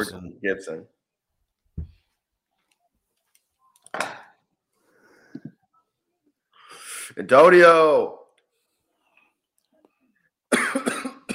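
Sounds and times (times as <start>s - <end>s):
speech: 0.0s - 1.0s, 7.1s - 8.2s
forceful harsh rasping cough: 4.0s - 4.4s, 10.5s - 11.3s.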